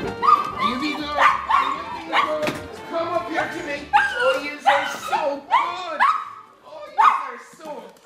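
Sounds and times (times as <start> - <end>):
two dogs barking and yelping at a parochial house in Oldcastle, County Meath, Ireland: 0.1 - 2.5, 3.4 - 7.3.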